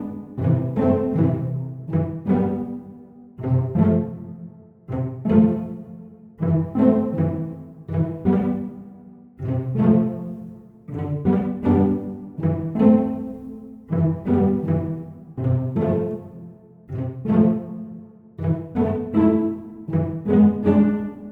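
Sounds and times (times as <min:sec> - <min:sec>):
cello pizzicato: 0:00.0 - 0:21.3.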